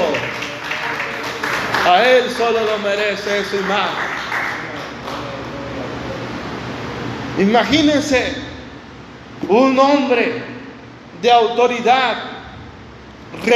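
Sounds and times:
audience applauding: 0.0 - 6.0
man speaking loudly: 1.8 - 4.2, 7.4 - 8.7, 9.4 - 12.5, 13.4 - 13.5
speech: 1.9 - 4.2, 7.4 - 8.4, 9.4 - 10.5, 11.2 - 12.3, 13.3 - 13.5.

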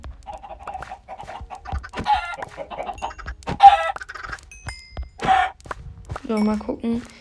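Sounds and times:
chickens clucking in video game: 0.2 - 4.5, 5.2 - 5.6
speech: 6.3 - 7.1.

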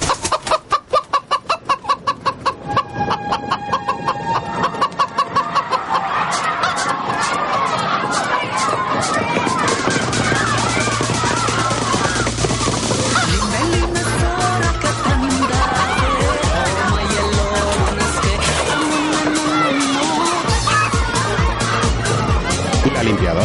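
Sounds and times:
hen clucking: 0.0 - 23.3
laughter: 3.5 - 23.4.

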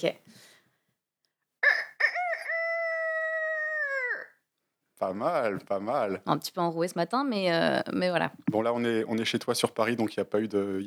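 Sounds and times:
speech: 0.0 - 0.5, 5.0 - 10.8
recorded rooster crowing played back: 1.6 - 4.3.

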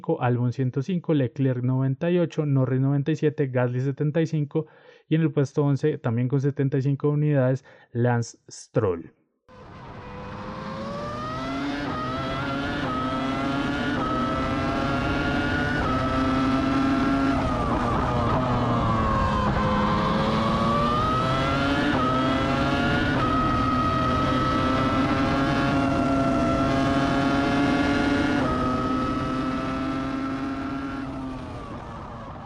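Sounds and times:
speech: 0.0 - 9.2
Formula One car V10 engine revving through gear changes on a circuit: 9.5 - 32.4.

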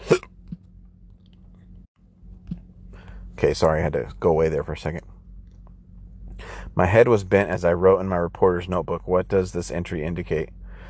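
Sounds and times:
hiccups: 0.0 - 0.4
low steady hum: 0.0 - 10.8
speech: 3.4 - 5.0, 6.8 - 10.6.

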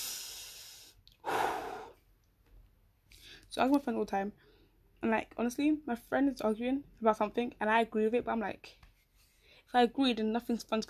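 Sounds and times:
deep breath: 0.0 - 2.0
speech: 3.5 - 8.8, 9.7 - 10.8.

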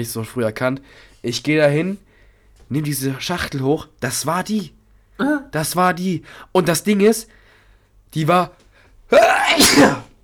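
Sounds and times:
speech: 0.0 - 2.1, 2.7 - 7.4, 8.1 - 10.0
sneeze: 9.1 - 10.2.

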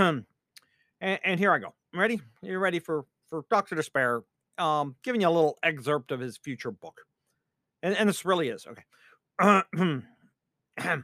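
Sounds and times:
speech: 0.0 - 0.3, 1.0 - 7.1, 7.8 - 10.1, 10.8 - 11.0
person clearing throat: 9.4 - 10.1, 10.8 - 11.0.

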